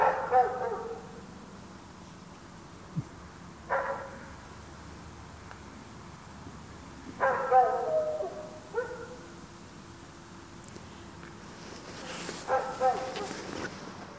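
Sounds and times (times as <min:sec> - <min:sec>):
dog barking: 0:00.0 - 0:01.2, 0:03.7 - 0:04.4, 0:07.2 - 0:09.3, 0:12.4 - 0:13.4.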